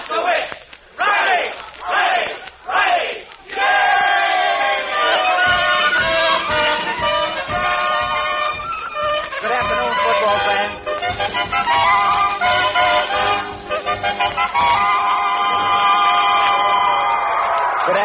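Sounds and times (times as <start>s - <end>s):
large football stadium crowd roaring and cheering: 0.0s - 18.0s
overlapping shouts and whoops from a stadium crowd: 1.0s - 6.0s, 15.0s - 18.0s.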